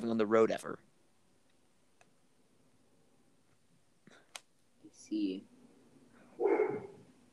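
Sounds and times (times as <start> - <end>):
speech: 0.0 - 0.9, 5.1 - 5.5
dog barking: 6.4 - 7.1.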